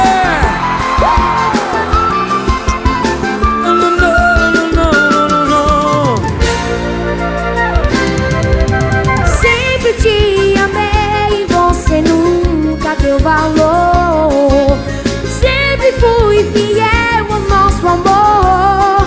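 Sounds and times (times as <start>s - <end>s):
crowd shouting and whooping: 0.0s - 3.6s
loud live band music: 0.0s - 19.0s.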